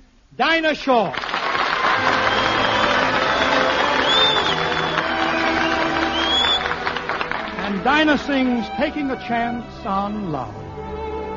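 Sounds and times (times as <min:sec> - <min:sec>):
speech: 0:00.4 - 0:01.2, 0:07.8 - 0:10.7
audience applause: 0:01.1 - 0:08.4
whistles from crowd: 0:02.0 - 0:06.9.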